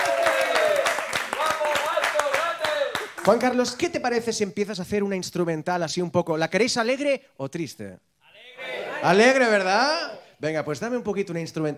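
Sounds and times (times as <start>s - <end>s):
audience applause: 0.0s - 3.6s
speech: 3.2s - 11.7s.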